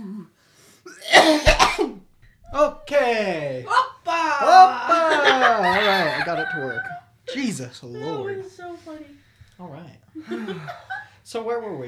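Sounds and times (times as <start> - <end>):
person coughing: 1.0 - 3.0
laughter: 2.5 - 9.1, 10.2 - 11.3
speech: 6.2 - 11.8.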